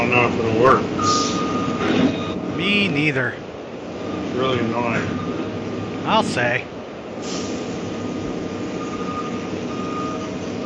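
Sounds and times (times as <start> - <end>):
dump truck engine rumbling: 0.0 - 10.6
speech: 0.1 - 3.5, 4.4 - 5.4, 6.0 - 7.5
dump truck reversing alarm beeps: 1.0 - 2.8, 5.0 - 5.4, 8.0 - 10.6.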